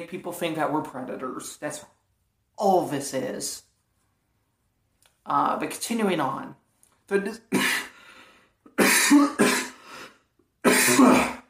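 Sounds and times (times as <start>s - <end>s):
speech: 0.0s - 2.0s, 2.6s - 3.7s, 5.2s - 7.8s, 9.1s - 9.5s
man coughing harshly to clear something caught in his throat: 7.5s - 7.9s, 8.8s - 9.8s, 10.6s - 11.4s.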